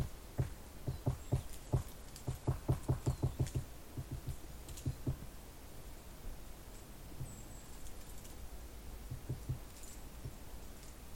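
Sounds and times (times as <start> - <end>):
great spotted woodpecker pecking heard through a beech trunk: 0.0 - 5.2, 9.1 - 10.4
steady soft hiss: 0.0 - 11.1.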